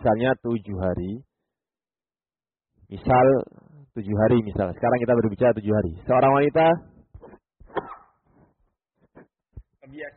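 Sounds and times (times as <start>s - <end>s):
speech: 0.0s - 1.3s, 2.9s - 7.9s, 9.9s - 10.1s
person sneezing during a spoken lecture: 7.2s - 8.2s.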